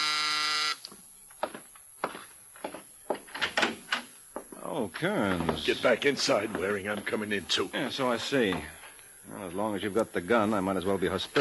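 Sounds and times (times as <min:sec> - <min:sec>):
harsh apartment door buzzer: 0:00.0 - 0:00.9
footsteps: 0:00.9 - 0:03.4, 0:04.3 - 0:09.7
speech: 0:04.8 - 0:11.3.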